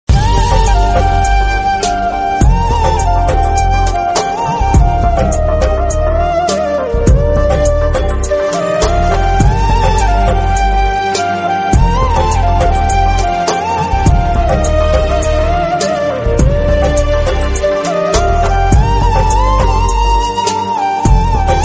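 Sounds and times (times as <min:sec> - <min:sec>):
sad background music on flute: 0:00.1 - 0:21.6.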